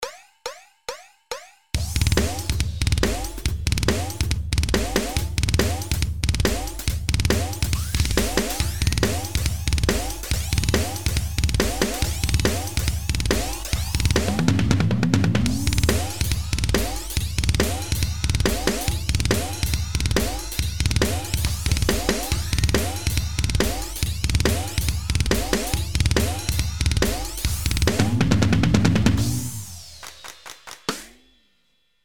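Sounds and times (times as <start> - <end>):
drums: 0.0 - 32.0.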